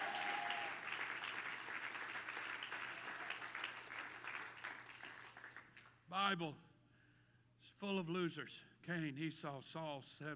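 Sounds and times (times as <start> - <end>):
crowd clapping: 0.0 - 6.0
speech: 6.1 - 6.7, 7.8 - 10.3.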